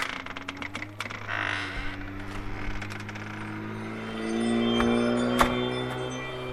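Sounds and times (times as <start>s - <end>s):
clicks and rattles from the outer door mechanism: 0.0s - 3.5s
home security doorbell system chime: 3.4s - 6.5s.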